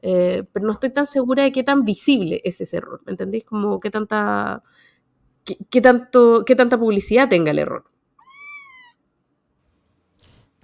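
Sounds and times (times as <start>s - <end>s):
speech: 0.0s - 4.8s, 5.5s - 7.9s
cat meowing angrily: 8.2s - 9.0s.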